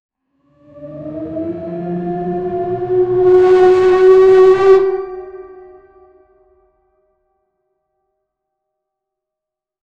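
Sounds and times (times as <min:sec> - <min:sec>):
wolf howling: 0:00.6 - 0:05.6.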